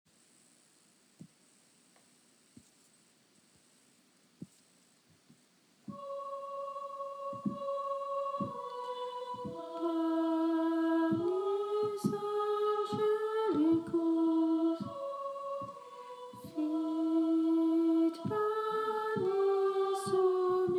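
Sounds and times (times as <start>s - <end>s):
tenor singing: 5.9s - 20.7s.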